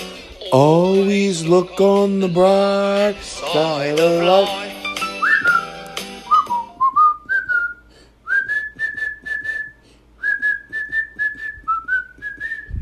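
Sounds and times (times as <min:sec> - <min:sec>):
speech: 0:00.5 - 0:04.8
person whistling a cheerful tune into a phone: 0:04.9 - 0:12.7.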